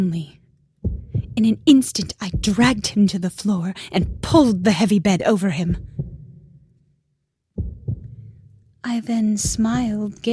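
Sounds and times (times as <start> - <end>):
speech: 0.0 - 0.4, 1.4 - 5.9, 8.8 - 10.3
muffled low heartbeat: 0.8 - 3.2, 3.8 - 4.8, 5.5 - 6.4, 7.6 - 8.4, 9.4 - 10.3.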